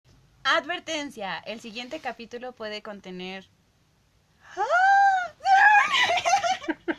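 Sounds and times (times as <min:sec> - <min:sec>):
speech: 0:00.4 - 0:03.6, 0:04.5 - 0:04.9
person letting out a short high-pitched embarrassed scream: 0:04.5 - 0:06.4.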